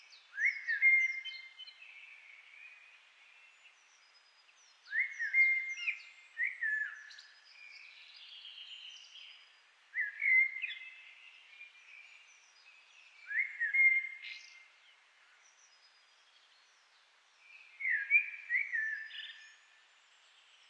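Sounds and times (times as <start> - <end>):
faint background hiss: 0.0 - 20.6
common blackbird Turdus merula singing: 0.1 - 4.0, 4.6 - 16.4, 17.4 - 19.7.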